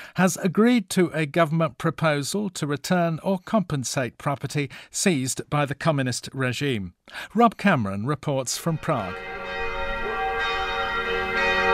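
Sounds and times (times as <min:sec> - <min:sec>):
speech: 0:00.2 - 0:09.6
church bells ringing for Catholic morning mass in Prague's Vinohrady district: 0:08.8 - 0:11.7.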